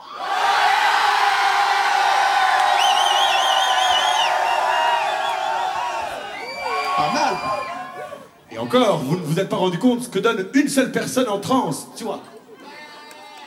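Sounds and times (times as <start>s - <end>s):
large crowd shouting together in unison: 0.0s - 8.3s
speech: 8.6s - 12.3s.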